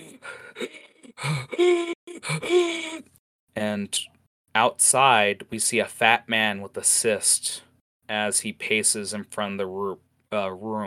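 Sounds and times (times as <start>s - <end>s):
strained pained gasps for air: 0.0s - 3.1s
speech: 0.6s - 1.9s, 3.7s - 10.8s.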